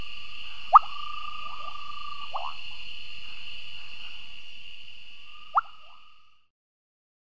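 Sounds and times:
high-pitched insect drone: 0:00.0 - 0:06.5
Cochran's running frog giving upward-sweeping plop notes: 0:00.7 - 0:02.6, 0:05.4 - 0:06.0.

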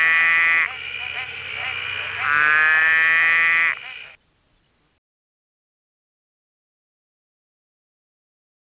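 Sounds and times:
Superb collared frog Cyclorana brevipes calling with nasal droning bleats: 0:00.0 - 0:04.2.

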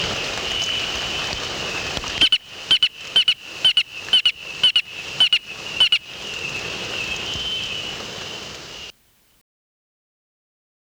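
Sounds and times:
steady hiss of background noise: 0:00.0 - 0:09.4
robust chirper frog Austrochaperina robusta chirping: 0:00.4 - 0:08.9.

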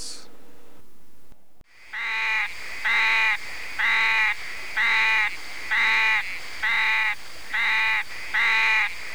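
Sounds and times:
Sclerophrys maculata toad: 0:01.7 - 0:09.1.

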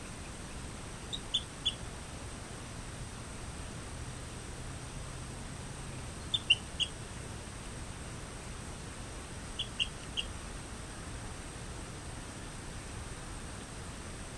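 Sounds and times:
faint background hiss: 0:00.0 - 0:14.3
Rio Grande chirping frog Eleutherodactylus cystignathoides chirps: 0:01.0 - 0:01.8, 0:06.2 - 0:07.0, 0:09.6 - 0:10.4.

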